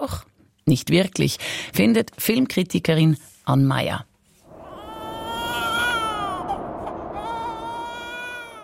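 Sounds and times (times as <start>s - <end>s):
speech: 0.0s - 4.1s
newborn baby crying: 4.6s - 8.6s.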